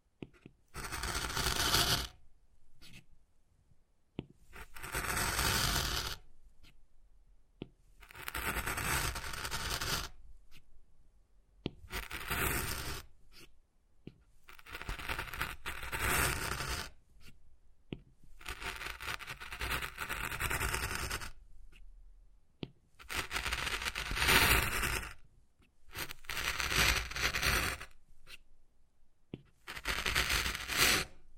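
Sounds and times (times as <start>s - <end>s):
wood being carved with scratching strokes: 0.3s - 2.2s, 4.5s - 6.8s, 8.0s - 10.7s, 11.8s - 13.6s, 14.5s - 17.4s, 18.3s - 21.8s, 23.0s - 25.2s, 25.9s - 28.4s, 29.4s - 31.2s.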